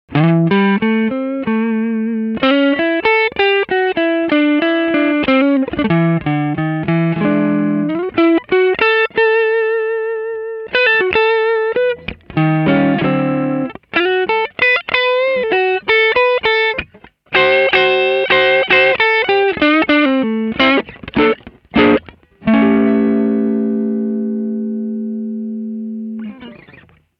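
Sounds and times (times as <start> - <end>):
double-neck guitar: 0.1 - 9.6, 10.7 - 27.0.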